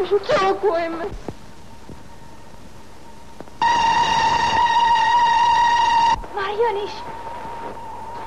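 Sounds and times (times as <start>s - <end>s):
speech: 0.0s - 1.3s, 6.4s - 7.2s
approaching train sounding a whistle: 3.6s - 6.2s.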